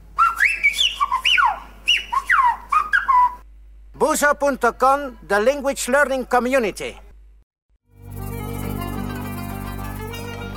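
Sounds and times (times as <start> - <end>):
Silbo Gomero whistled language: 0.2 - 3.4
speech: 4.0 - 7.0.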